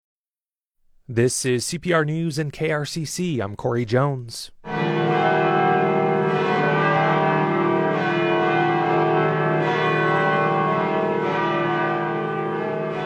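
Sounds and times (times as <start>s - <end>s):
speech: 1.1s - 5.3s
church bells pealing: 4.6s - 13.0s.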